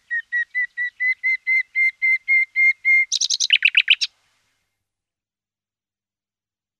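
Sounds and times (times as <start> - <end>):
common nightingale singing: 0.0 - 4.8.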